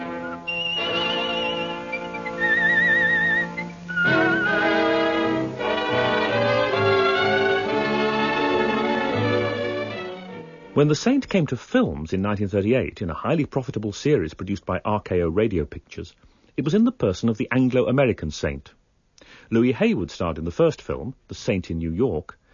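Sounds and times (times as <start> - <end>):
whistled theme melody with wavering vibrato: 0.0 - 10.4
full orchestra playing: 0.0 - 11.0
speech: 10.8 - 18.8, 19.4 - 22.4.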